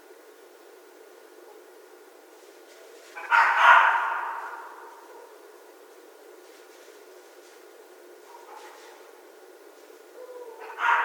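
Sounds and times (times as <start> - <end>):
red fox letting out a hoarse drawn-out scream: 3.2 - 5.0, 10.2 - 11.0.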